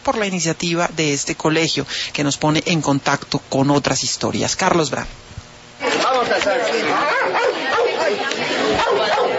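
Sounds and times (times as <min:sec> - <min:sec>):
speech: 0:00.0 - 0:05.3
busy chattering background: 0:05.8 - 0:09.3
stray dogs barking and yipping: 0:06.5 - 0:09.3.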